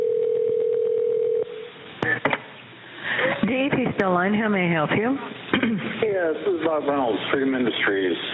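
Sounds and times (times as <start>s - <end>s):
telephone dial tone: 0.0s - 1.5s
speech: 3.5s - 8.3s.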